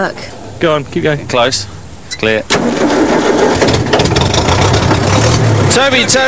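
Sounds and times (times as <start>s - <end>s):
speech: 0.0s - 3.8s, 5.8s - 6.2s
tractor engine running with a low rattly rumble: 0.6s - 6.2s
tractor engine cranking and starting: 2.2s - 6.2s.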